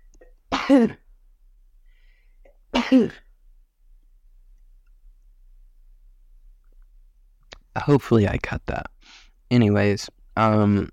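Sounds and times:
speech: 0.7 - 1.0, 2.9 - 3.2, 7.8 - 8.9, 9.5 - 10.9
loud sneezes: 2.8 - 3.2.

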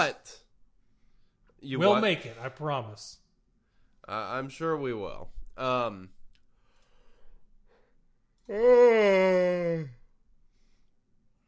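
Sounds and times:
speech: 0.0 - 0.4, 1.6 - 3.2, 4.0 - 6.2, 8.5 - 10.0
person yawning: 8.5 - 10.0.

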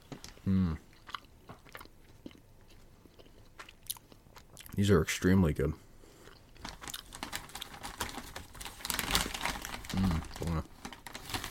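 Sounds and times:
chewing sour gummy worms: 0.3 - 4.8, 6.2 - 8.3, 9.1 - 10.7
speech: 0.5 - 0.9, 4.8 - 5.9
industrial-size bag of sour gummy worms crinkling and rustling: 6.6 - 11.4.

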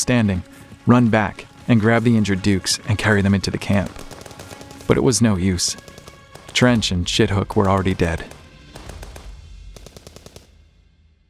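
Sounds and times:
speech: 0.1 - 4.1, 4.9 - 5.9, 6.6 - 8.4
gunshots fired at fleeing enemies: 2.7 - 10.6.

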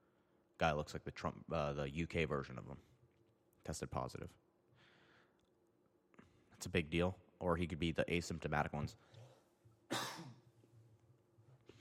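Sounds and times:
speech: 0.6 - 2.9, 3.6 - 4.4, 6.6 - 9.2
single loud wet cough: 9.9 - 10.4.

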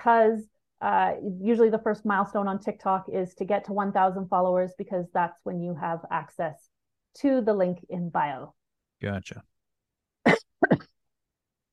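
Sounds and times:
speech: 0.0 - 9.5
quick double throat-clearing cough: 10.2 - 11.0
person coughing: 10.3 - 10.9.

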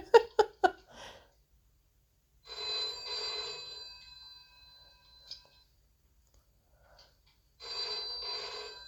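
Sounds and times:
loud harsh telephone bell ringing: 2.5 - 5.7, 7.6 - 8.8.

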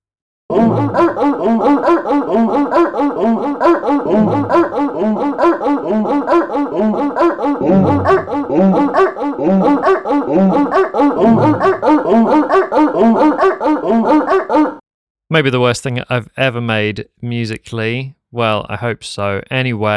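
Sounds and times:
melody played with sampled dog barks: 0.5 - 14.8
speech: 15.3 - 19.9.

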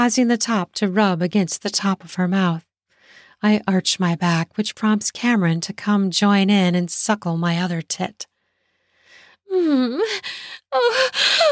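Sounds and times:
speech: 0.0 - 2.7, 3.4 - 8.3, 9.5 - 11.5
soft quiet breath: 2.9 - 3.4, 8.4 - 9.4
woman gasping sharply: 10.0 - 11.5.

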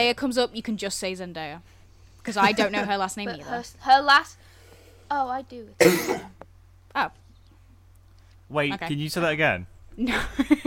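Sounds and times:
speech: 0.0 - 4.5, 5.1 - 7.2, 8.5 - 10.6
person coughing: 5.8 - 6.4.

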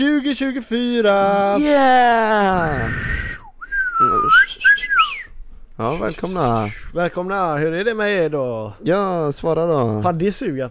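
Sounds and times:
speech: 0.0 - 3.2, 4.0 - 4.8, 5.8 - 10.6
breathy noise: 2.4 - 6.9
person practicing whistling with wavering tone: 2.8 - 5.4.

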